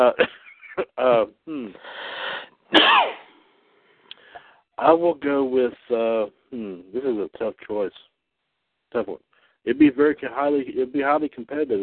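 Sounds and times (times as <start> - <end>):
speech: 0.0 - 0.4, 4.8 - 8.1, 8.9 - 11.8
sneeze: 2.7 - 3.3.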